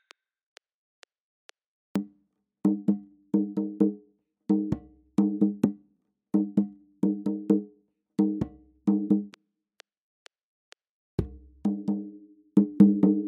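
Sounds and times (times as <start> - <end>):
African rhythm at 130 bpm: 2.0 - 5.8, 6.4 - 9.4, 11.2 - 13.2.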